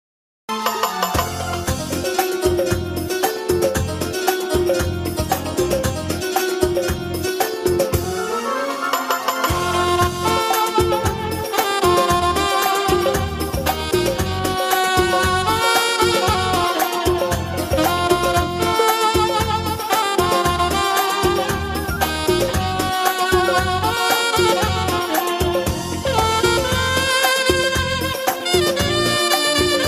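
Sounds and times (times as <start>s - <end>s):
saxophone instrumental call ringtone: 0.5s - 29.8s.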